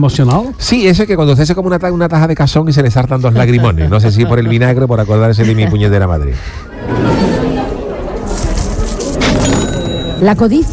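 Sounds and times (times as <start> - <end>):
speech: 0.0 - 7.6, 10.2 - 10.7
low murmur of voices: 0.0 - 10.7
laughter: 3.1 - 9.0
coins and chains clinking as chests are emptied: 8.3 - 10.7.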